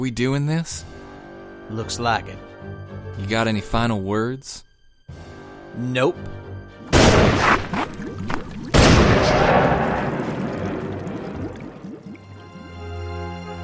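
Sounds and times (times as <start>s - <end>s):
speech: 0.0s - 1.0s, 1.7s - 6.4s
gunshots in a duel: 6.9s - 8.0s, 8.7s - 11.2s.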